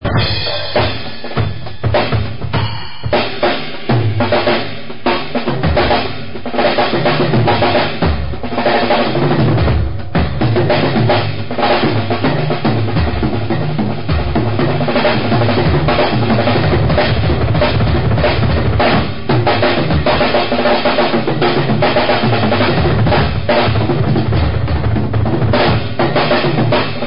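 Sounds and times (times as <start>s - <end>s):
drum solo: 0.0s - 27.0s.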